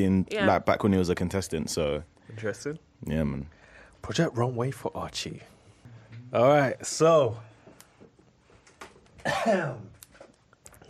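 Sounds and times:
speech: 0.0s - 5.6s, 6.3s - 7.5s, 9.2s - 9.9s
breaths: 3.5s - 4.0s, 5.6s - 6.3s
loud harsh rasping throat clearing: 9.2s - 9.9s.

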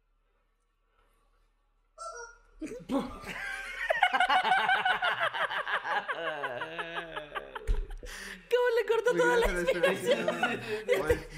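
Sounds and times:
person imitating a chicken: 2.0s - 2.4s
speech: 2.6s - 3.5s, 9.1s - 11.3s
laughter: 2.9s - 8.2s, 9.0s - 11.3s.

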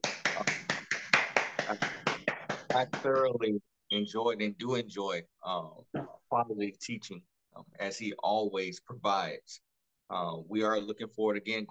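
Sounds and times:
crisp hand claps in a brisk rhythm: 0.0s - 3.4s
speech: 2.8s - 11.6s.

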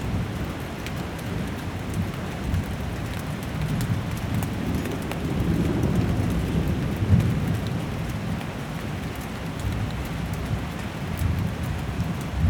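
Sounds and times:
heavy rain pouring in a storm: 0.0s - 12.4s.

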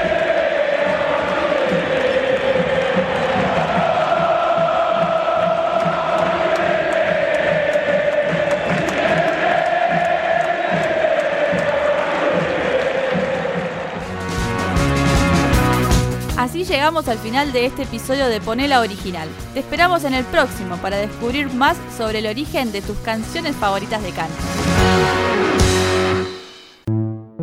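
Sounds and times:
massive stadium crowd of football fans singing a rhythmic chant: 0.0s - 14.4s
drums or clapping pulsing underneath stadium chant: 0.0s - 26.3s
speech: 16.8s - 25.6s.

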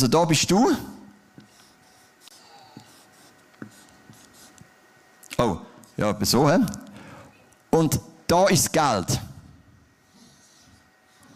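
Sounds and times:
speech: 0.0s - 0.9s, 5.4s - 6.9s, 7.8s - 9.3s
pen scratching and tapping across paper: 1.4s - 4.6s.

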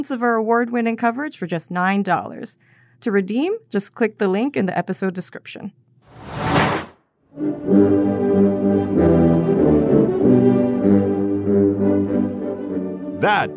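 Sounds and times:
speech: 0.0s - 6.5s, 7.4s - 11.1s, 13.2s - 13.5s
ceremonial brass fanfare with layered horn notes: 7.3s - 13.5s.

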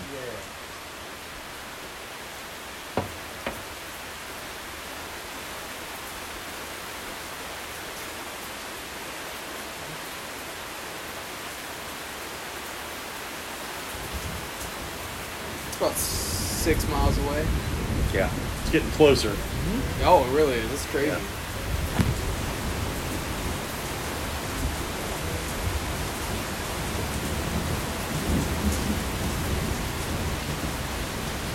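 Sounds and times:
heavy rain pouring in a dense even hiss: 0.0s - 31.5s
sharp little knocks: 3.0s - 3.8s
speech: 15.8s - 21.4s.

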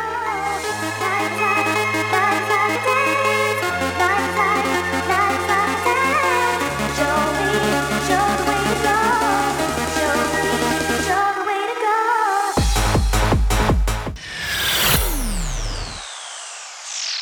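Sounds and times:
electronic dance track with synth chords and deep bass line: 0.0s - 17.2s
sweeping rising effect: 14.2s - 17.2s.

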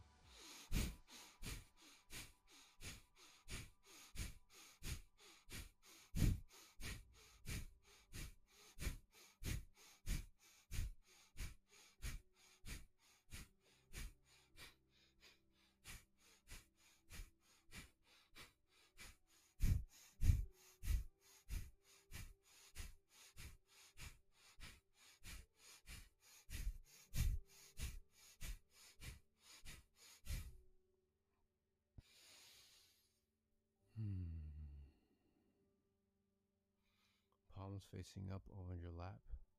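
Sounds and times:
quick forceful inhales and exhales in a guided breathing exercise: 0.2s - 30.6s, 32.0s - 33.2s
speech: 37.7s - 39.3s.

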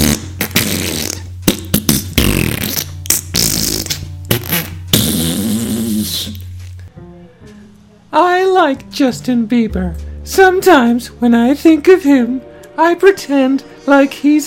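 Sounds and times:
person mimicking a fart with mouth raspberries: 0.0s - 6.8s
speech: 8.6s - 14.4s.

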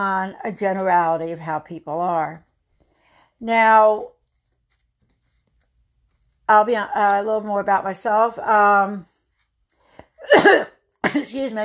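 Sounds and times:
speech: 0.0s - 2.5s, 3.4s - 4.2s, 6.5s - 9.1s, 10.2s - 11.6s
person coughing: 10.2s - 11.5s.

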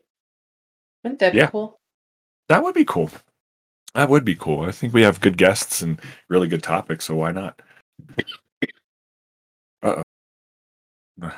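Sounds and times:
speech: 1.0s - 1.8s, 2.5s - 3.3s, 3.9s - 8.8s, 9.8s - 10.1s, 11.2s - 11.3s
person coughing after coffee went down the wrong way: 8.0s - 8.8s.

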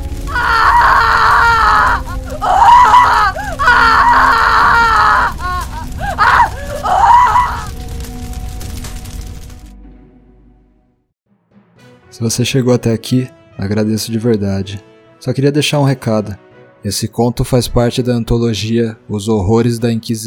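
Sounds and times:
people screaming as flames ignite: 0.2s - 7.8s
speech: 12.2s - 20.2s.

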